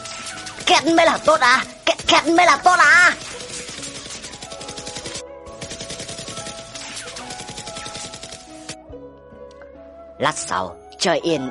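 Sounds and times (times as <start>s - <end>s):
M4A1 rifle automatic gunfire: 0.0s - 8.8s
speech: 0.7s - 3.3s, 10.2s - 11.4s.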